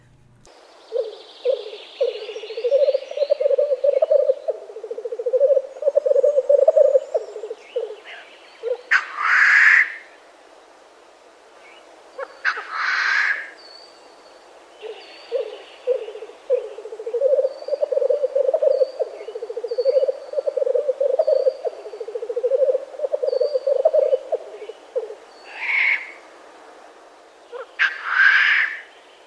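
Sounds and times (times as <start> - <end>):
male black grouse rookooing display call: 0.9 - 10.0, 12.4 - 13.5, 14.8 - 26.2, 27.5 - 28.9.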